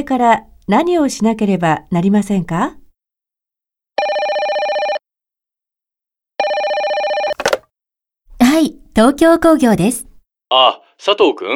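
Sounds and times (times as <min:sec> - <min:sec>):
speech: 0:00.0 - 0:02.8, 0:09.0 - 0:11.5
telephone ringing with electronic trill: 0:04.0 - 0:05.0, 0:06.4 - 0:07.6
telephone handset clattering as it is picked up: 0:07.3 - 0:07.6.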